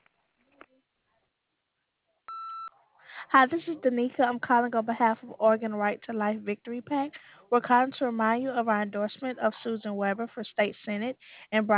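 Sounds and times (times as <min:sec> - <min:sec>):
answering machine beep: 0:02.3 - 0:02.7
speech: 0:03.3 - 0:11.7.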